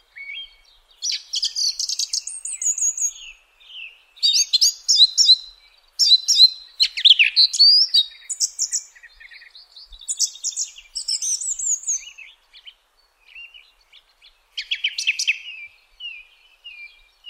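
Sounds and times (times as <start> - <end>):
song thrush singing: 0.0 - 17.2.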